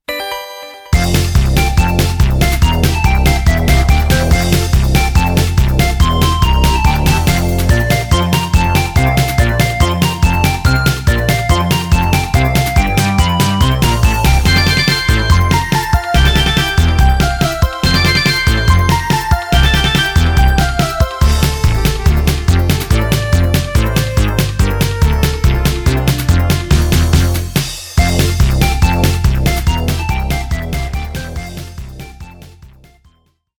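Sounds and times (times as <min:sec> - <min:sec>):
percussion head: 0:01.0 - 0:32.8.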